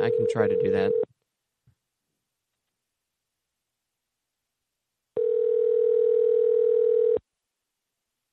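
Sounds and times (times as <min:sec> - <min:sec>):
speech: 0:00.1 - 0:01.1
telephone dial tone: 0:05.2 - 0:07.2.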